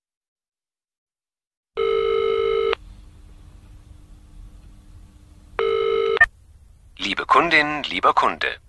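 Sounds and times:
phone line ringing with long electronic rings: 1.8s - 2.8s, 5.6s - 6.3s
faint phone line hum: 1.8s - 8.6s
speech: 7.1s - 8.6s.

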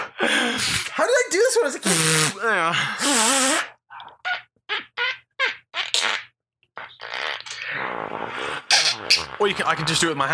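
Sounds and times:
speech: 0.2s - 3.7s, 9.4s - 10.3s
wet sputtering mouth-blown fart noises: 1.8s - 2.4s, 3.0s - 10.1s.

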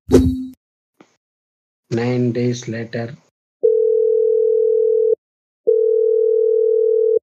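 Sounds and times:
speech: 1.9s - 3.2s
phone line ringing through the handset: 3.6s - 7.2s.

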